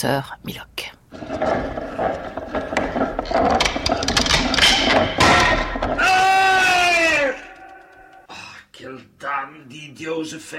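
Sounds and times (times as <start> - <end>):
speech: 0.0 - 2.2, 10.0 - 10.5
time machine whirring, ratcheting and clattering, radio drama sound effect: 1.1 - 8.3.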